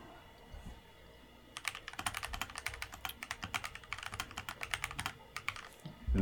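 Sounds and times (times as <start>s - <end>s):
typing on mechanical keyboard with linear switches: 1.6s - 5.8s.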